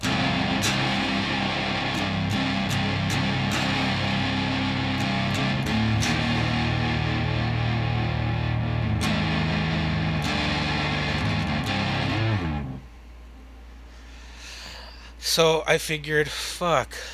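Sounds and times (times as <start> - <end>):
electric guitar through a fuzz pedal into an amp clean channel: 0.0 - 12.9
speech: 15.4 - 17.1.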